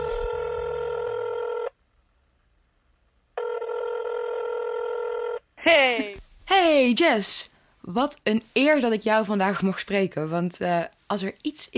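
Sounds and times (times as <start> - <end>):
telephone ring tones of an outgoing call: 0.0 - 1.7, 3.4 - 5.4
speech: 5.7 - 11.7.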